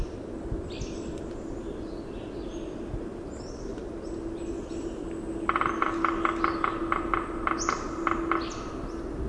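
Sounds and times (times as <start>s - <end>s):
steady low hum: 0.0s - 9.2s
red-breasted sapsucker drumming: 3.6s - 9.2s.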